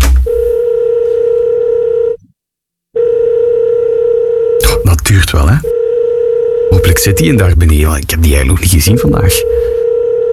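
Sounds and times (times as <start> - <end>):
telephone dial tone on a call to a reception desk: 0.5 - 2.2, 3.0 - 4.6, 5.7 - 7.4, 9.5 - 10.3
speech: 5.1 - 5.8, 6.7 - 9.8.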